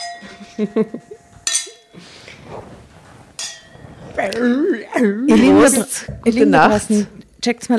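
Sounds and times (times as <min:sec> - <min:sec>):
wine glasses clinking in a toast: 0:00.0 - 0:02.0
speech: 0:00.2 - 0:01.2, 0:04.2 - 0:07.7.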